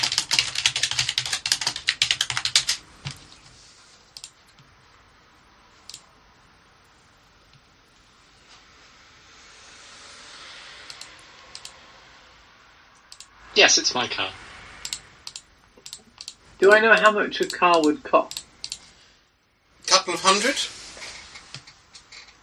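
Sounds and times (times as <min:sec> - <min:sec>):
rapid keyboard typing: 0:00.0 - 0:03.4, 0:04.2 - 0:04.7, 0:10.9 - 0:11.8, 0:14.8 - 0:18.9
speech: 0:13.6 - 0:14.4, 0:16.6 - 0:18.4, 0:20.3 - 0:20.8.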